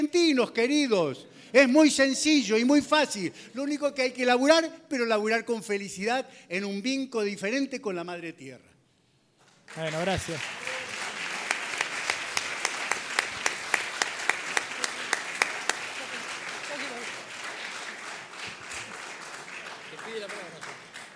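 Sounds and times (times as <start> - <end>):
speech: 0.0 - 8.7, 9.7 - 10.6
audience applause: 9.7 - 21.1.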